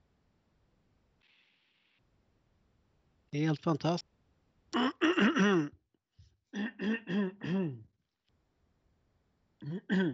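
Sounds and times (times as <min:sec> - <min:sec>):
speech: 0:03.3 - 0:04.1
person clearing throat: 0:04.8 - 0:05.7, 0:06.6 - 0:07.8, 0:09.6 - 0:10.1.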